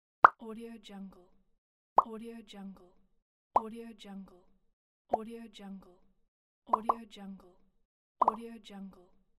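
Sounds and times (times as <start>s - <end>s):
plops: 6.7s - 7.0s.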